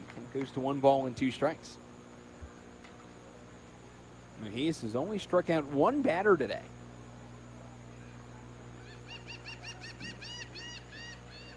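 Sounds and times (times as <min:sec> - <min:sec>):
steady low hum of noise: 0:00.0 - 0:11.5
speech: 0:00.4 - 0:01.8, 0:04.4 - 0:06.8
seagulls squawking flying behind home plate at a beach baseball game: 0:08.8 - 0:11.5.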